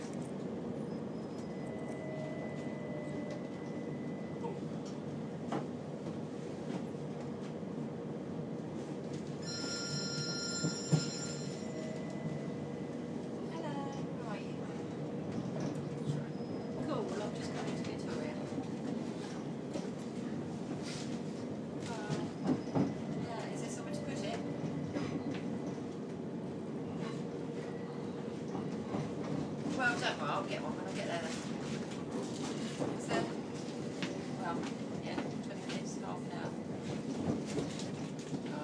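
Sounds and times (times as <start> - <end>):
train arriving at a railway station: 0.0 - 38.6.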